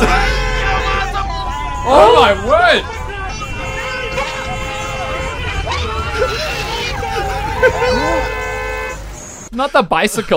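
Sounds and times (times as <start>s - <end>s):
laughter: 0.0s - 8.6s
hubbub of crowd chatter: 0.0s - 8.9s
street traffic low engine rumble: 0.0s - 9.5s
sustained horn-like tones in street traffic: 0.0s - 9.5s
speech: 1.9s - 3.0s, 9.6s - 10.3s.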